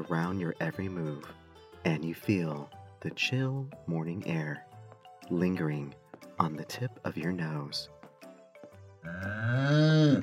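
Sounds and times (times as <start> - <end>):
speech: 0.0 - 4.7, 5.3 - 8.0, 9.0 - 10.2
cow mooing on a ranch: 9.0 - 10.2.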